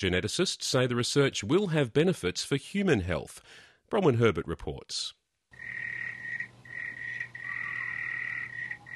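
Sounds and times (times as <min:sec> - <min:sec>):
speech: 0:00.0 - 0:05.9
frogs croaking in a trilling chorus: 0:05.5 - 0:08.9.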